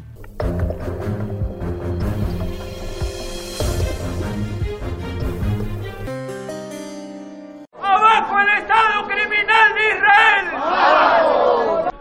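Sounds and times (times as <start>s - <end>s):
music with sustained tones: 0.0s - 7.7s
crowd of dozens of protesters chanting and shouting outside the Foreign Ministry in Peru: 7.7s - 11.9s.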